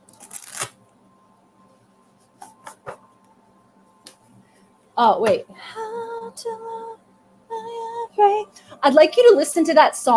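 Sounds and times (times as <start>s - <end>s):
playing cards being shuffled for a psychic reading: 0.1s - 0.8s
speech: 5.0s - 5.8s, 6.4s - 6.9s, 8.2s - 10.1s.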